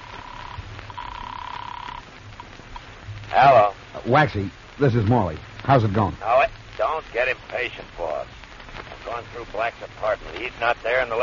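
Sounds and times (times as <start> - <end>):
electronic telephone ringback tones on an outgoing call heard through the line: 0.0 - 2.0
low hum: 0.0 - 11.2
speech: 3.3 - 8.4, 9.1 - 11.2.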